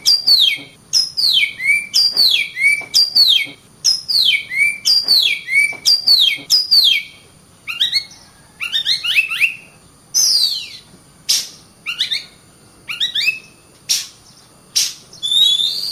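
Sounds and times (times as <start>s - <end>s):
nightingale song played to train cage birds: 0.0s - 15.9s.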